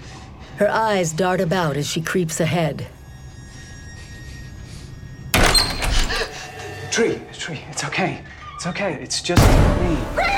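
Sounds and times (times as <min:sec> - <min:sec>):
speech: 0:00.6 - 0:03.0, 0:07.0 - 0:10.3
door banging open: 0:05.3 - 0:06.2.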